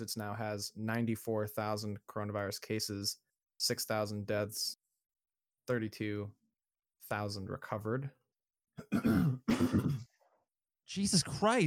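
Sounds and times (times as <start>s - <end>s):
speech: 0.0s - 4.8s, 5.7s - 6.4s, 7.0s - 8.2s, 8.8s - 10.1s, 10.9s - 11.6s
person clearing throat: 8.8s - 10.2s
person coughing: 8.8s - 10.2s.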